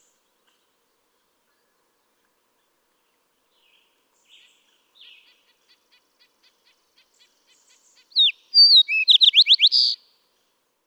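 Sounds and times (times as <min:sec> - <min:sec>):
Fox Sparrow song of slurred whistles ending in a buzz: 0:08.2 - 0:10.0.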